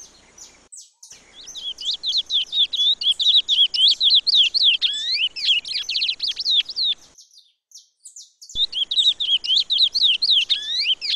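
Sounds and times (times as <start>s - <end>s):
Chestnut-bellied seed finch Sporophila angolensis singing warbled whistled notes: 0.0s - 11.1s.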